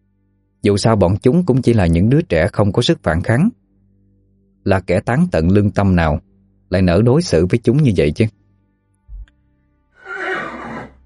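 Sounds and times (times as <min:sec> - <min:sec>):
speech: 0:00.6 - 0:03.6, 0:04.6 - 0:08.4
horse neighing: 0:10.0 - 0:11.0.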